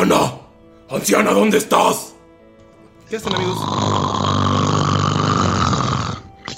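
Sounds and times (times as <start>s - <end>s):
speech: 0.9s - 2.1s, 3.1s - 4.1s
person snoring: 3.2s - 6.5s.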